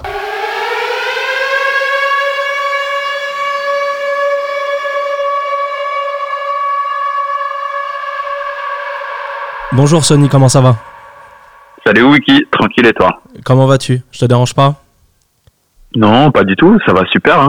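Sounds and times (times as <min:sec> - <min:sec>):
loud siren wailing: 0:00.0 - 0:13.2
speech: 0:09.8 - 0:10.9, 0:11.9 - 0:14.8, 0:15.9 - 0:17.4.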